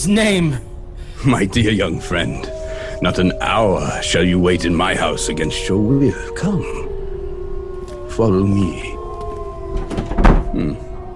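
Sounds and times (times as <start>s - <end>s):
speech: 0.0s - 6.8s, 8.2s - 8.9s, 10.6s - 10.9s
bolted locked wooden door being tried and rattled: 7.8s - 10.7s.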